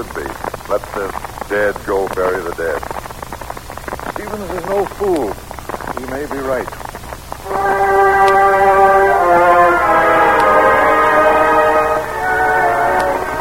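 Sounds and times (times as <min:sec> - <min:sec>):
speech: 0:00.0 - 0:03.1, 0:04.2 - 0:06.8, 0:07.6 - 0:08.0
train horn blaring: 0:07.4 - 0:13.3.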